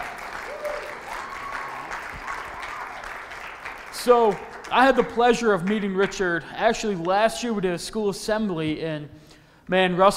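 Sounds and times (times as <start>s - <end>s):
audience applause: 0.0s - 6.3s
speech: 4.0s - 10.1s.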